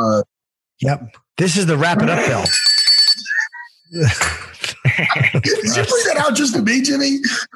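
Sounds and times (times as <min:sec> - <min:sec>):
speech: 0:00.0 - 0:03.3, 0:03.9 - 0:07.5
handheld bell jingling: 0:02.4 - 0:03.4
laughter: 0:03.2 - 0:07.5.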